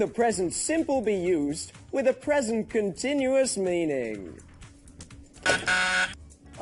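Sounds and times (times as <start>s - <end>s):
speech: 0.0s - 4.5s
quiz buzzer pressed, harsh electronic buzz: 5.4s - 6.2s.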